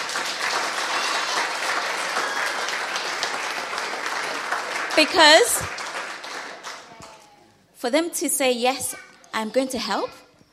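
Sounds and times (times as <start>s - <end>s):
audience applauding: 0.0s - 7.2s
speech: 5.0s - 5.8s, 7.8s - 10.2s.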